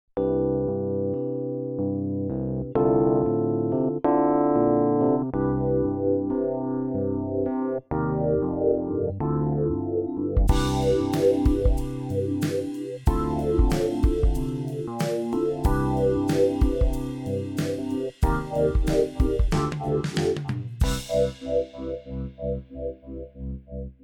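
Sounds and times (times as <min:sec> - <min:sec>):
vintage electric piano: 0:00.2 - 0:24.0.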